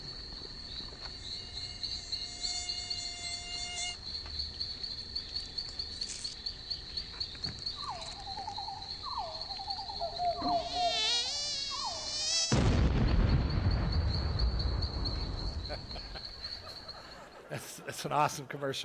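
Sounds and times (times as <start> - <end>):
mosquito whine in a commercial: 0.8 - 4.1, 7.8 - 12.7
loud crackling burst as the mosquito blows up: 12.4 - 15.8
laughter: 15.6 - 18.8
speech: 18.0 - 18.8.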